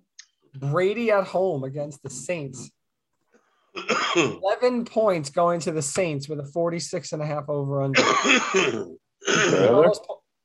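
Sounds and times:
speech: 0:00.6 - 0:02.8, 0:03.8 - 0:10.2
harsh throaty coughing: 0:03.8 - 0:04.4, 0:08.0 - 0:09.8.

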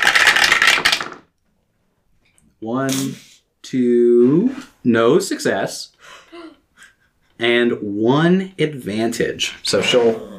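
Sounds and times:
dice clattering and rattling across a dice tray: 0:00.0 - 0:01.3
speech: 0:02.6 - 0:06.3, 0:07.4 - 0:10.3.

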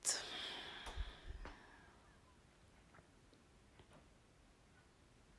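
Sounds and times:
slow deep inhale: 0:00.2 - 0:02.0.

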